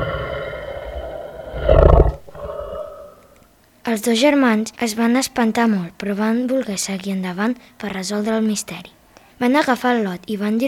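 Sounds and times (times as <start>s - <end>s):
deep dragon-like roar: 0.0s - 3.4s
low rumbling drone: 0.0s - 3.4s
speech: 3.9s - 10.6s.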